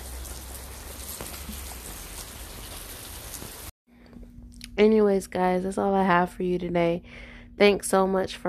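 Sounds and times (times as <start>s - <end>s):
rain pouring outside a house: 0.0s - 3.7s
speech: 4.8s - 8.4s.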